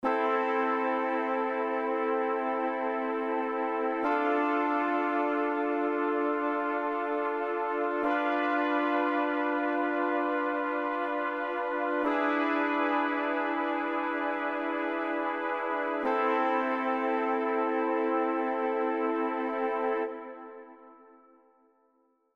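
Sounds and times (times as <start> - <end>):
brass instruments playing minor chords: 0.0 - 21.6.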